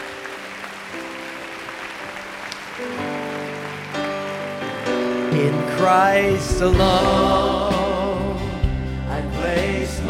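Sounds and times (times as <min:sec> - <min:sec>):
large crowd applauding: 0:00.0 - 0:06.8
sustained keyboard chords: 0:00.0 - 0:10.0
speech: 0:02.8 - 0:03.0, 0:05.4 - 0:07.8.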